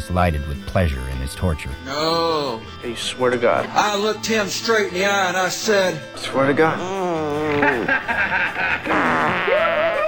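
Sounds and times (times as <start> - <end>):
speech: 0.1 - 9.1
person imitating a fart with the mouth: 6.8 - 7.6, 8.9 - 10.0
laughter: 6.8 - 10.0.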